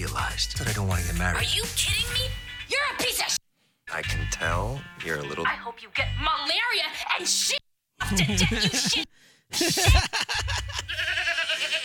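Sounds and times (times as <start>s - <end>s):
speech: 0.1s - 11.8s
laughter: 8.0s - 11.8s
goats bleating: 10.6s - 11.8s.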